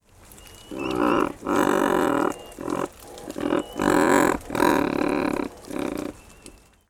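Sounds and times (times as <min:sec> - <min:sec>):
Razorbill growling calls: 0:00.7 - 0:06.2.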